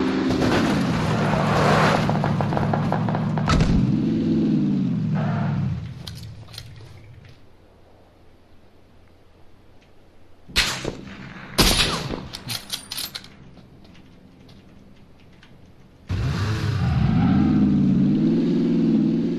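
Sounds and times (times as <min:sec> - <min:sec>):
car engine driving in a video game: 0:00.0 - 0:07.4, 0:13.4 - 0:19.3
sniper rifle shots in a video game: 0:10.5 - 0:12.4.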